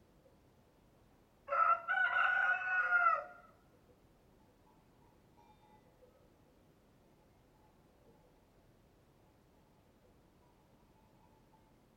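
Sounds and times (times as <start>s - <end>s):
rooster crowing cock-a-doodle-doo: 1.5s - 3.5s.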